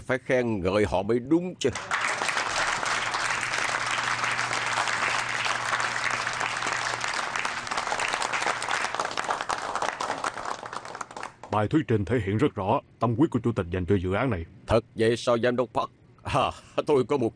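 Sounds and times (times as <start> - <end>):
speech: 0.1 - 2.0, 11.6 - 17.3
audience applause after a presentation: 1.7 - 11.5.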